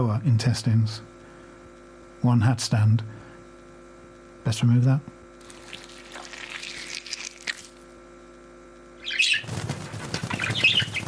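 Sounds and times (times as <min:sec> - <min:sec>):
speech: 0:00.0 - 0:01.2, 0:02.2 - 0:03.2, 0:04.4 - 0:05.2
steady electrical hum: 0:00.0 - 0:11.0
bird chirps: 0:09.0 - 0:11.0
bird wings flapping: 0:09.0 - 0:11.0.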